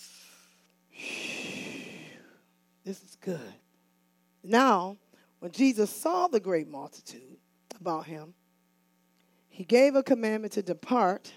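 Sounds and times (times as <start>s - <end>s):
deep breath in: 0.0s - 2.4s
speech: 2.9s - 3.6s, 4.4s - 8.4s, 9.5s - 11.3s.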